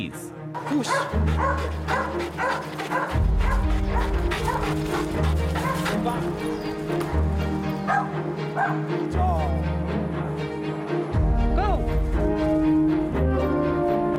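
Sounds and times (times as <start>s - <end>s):
speech: 0.0s - 9.7s
music: 0.0s - 14.1s
dog barking and yipping: 0.6s - 8.8s.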